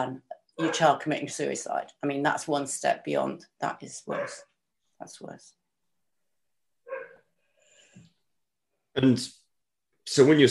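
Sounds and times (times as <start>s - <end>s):
speech: 0.0s - 5.6s, 9.0s - 9.4s, 10.1s - 10.4s
dog whining or grumbling: 0.6s - 0.9s, 6.9s - 7.2s
dog barking: 0.6s - 1.0s, 4.1s - 4.4s, 6.9s - 7.2s.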